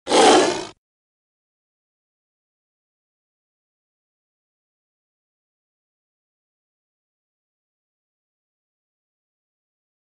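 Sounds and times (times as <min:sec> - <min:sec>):
lion roaring: 0:00.1 - 0:00.8.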